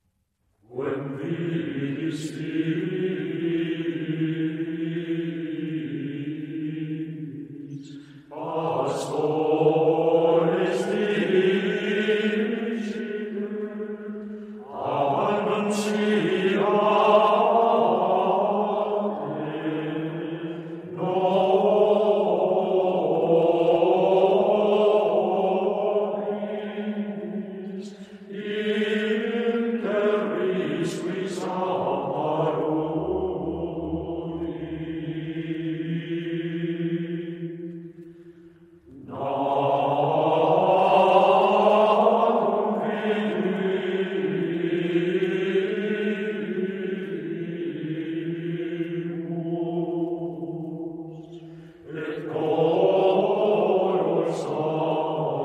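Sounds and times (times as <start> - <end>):
Gregorian chant: 0.6 - 55.4.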